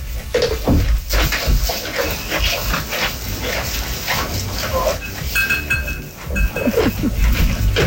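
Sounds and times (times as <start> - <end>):
goats chewing cud: 0.0 - 7.8
short high tonal sounds: 6.3 - 7.3.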